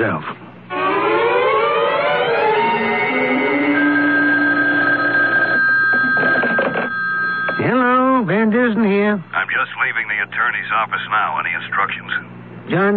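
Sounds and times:
speech: 0.0 - 0.4, 9.2 - 12.9
loud electronic telephone ringing in an attorney's office: 0.7 - 7.9.

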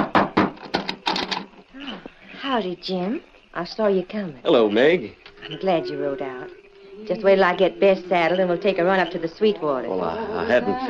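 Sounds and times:
knocking on a front door: 0.0 - 1.0
speech: 2.5 - 10.8.

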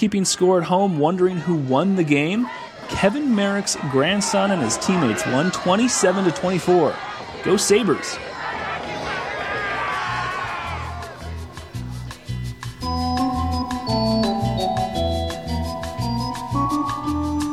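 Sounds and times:
speech: 0.0 - 8.4
football crowd cheering and yelling: 0.0 - 17.1
brassy band tune: 12.7 - 17.5.

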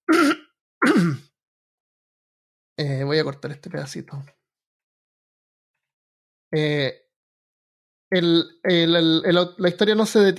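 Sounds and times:
throat clearing: 0.1 - 1.3, 6.6 - 6.9
speech: 0.9 - 1.2, 2.8 - 4.4, 6.5 - 7.0, 8.1 - 10.3.

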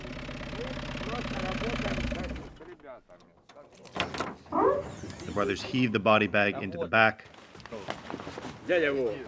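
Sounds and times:
vehicle engine idling: 0.0 - 3.6
speech: 2.9 - 9.2.

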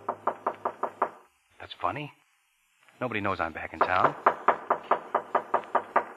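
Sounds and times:
quick knocks on a wooden door: 0.0 - 1.2, 3.8 - 6.1
speech: 1.8 - 2.2, 3.0 - 4.3.

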